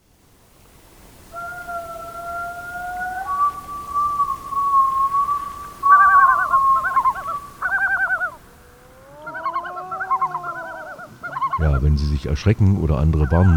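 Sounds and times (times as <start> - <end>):
Yellow-billed loon wailing and yodelling at breeding grounds on small tundra lakes: 1.3 - 11.6
speech: 12.0 - 13.5.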